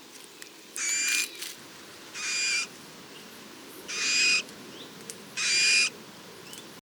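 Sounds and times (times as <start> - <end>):
Eurasian Bullfinch hoarse breathy piping calls, Pyrrhula pyrrhula: 2.1 - 3.3, 3.9 - 6.6.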